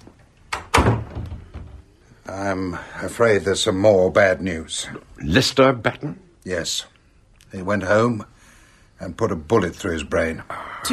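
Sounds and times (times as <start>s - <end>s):
faint low noise: 0.0s - 10.9s
door shutting: 0.5s - 2.0s
speech: 2.3s - 8.4s, 9.0s - 10.9s.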